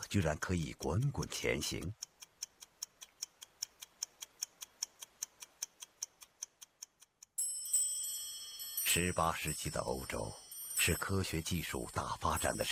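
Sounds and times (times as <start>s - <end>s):
mechanical automaton clock ticking: 0.0s - 7.4s, 9.0s - 12.7s
speech: 0.1s - 2.0s, 9.0s - 12.7s
bright sustained chiming tones of a mechanical automaton clock: 7.4s - 12.7s.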